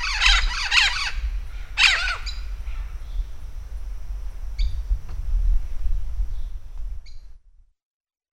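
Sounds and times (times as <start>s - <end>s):
Vinaceous-breasted amazon squealing parrot calls: 0.0s - 1.2s, 1.8s - 2.4s
low rumble: 0.0s - 7.7s.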